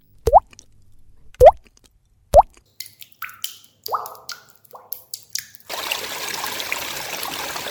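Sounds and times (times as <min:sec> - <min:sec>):
clear resonant water drops falling: 0:02.4 - 0:05.9
irregular water drips and splashes: 0:02.4 - 0:07.6
steady stream of trickling water: 0:02.7 - 0:07.6.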